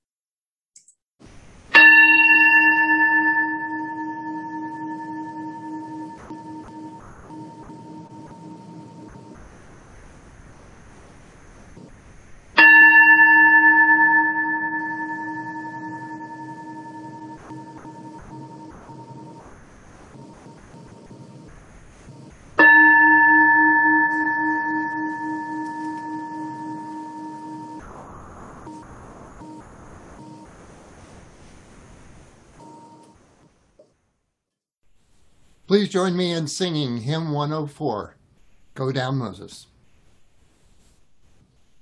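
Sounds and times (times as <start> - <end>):
bell struck to open worship: 1.8 - 8.2, 12.6 - 19.2, 22.6 - 27.8
speech: 35.7 - 38.2, 38.8 - 39.7.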